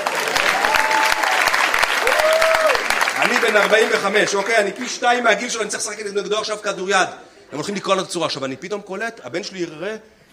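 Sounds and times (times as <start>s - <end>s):
audience applause: 0.0s - 5.3s
speech: 3.5s - 10.2s.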